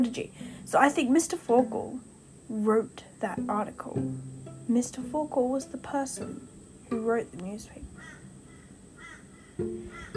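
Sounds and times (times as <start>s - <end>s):
speech: 0.0s - 7.9s, 9.6s - 10.1s
birds giving harsh crow-like caws: 8.0s - 10.1s.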